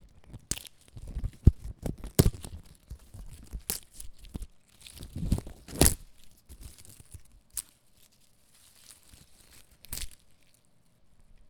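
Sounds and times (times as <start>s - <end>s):
leaves ripping: 0.4s - 7.7s, 8.6s - 10.3s.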